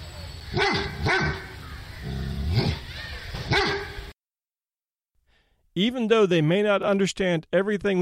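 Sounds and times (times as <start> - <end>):
speech: 0.5 - 1.4, 5.8 - 8.0
dog barking: 0.5 - 1.5, 3.5 - 4.0.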